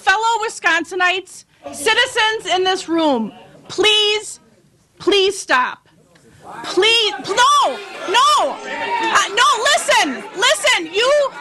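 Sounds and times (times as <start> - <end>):
speech: 0.5 - 4.4, 5.0 - 5.8, 6.4 - 11.3
crowd of protesting citizens shouting in a legislative committee hearing room: 6.4 - 11.3.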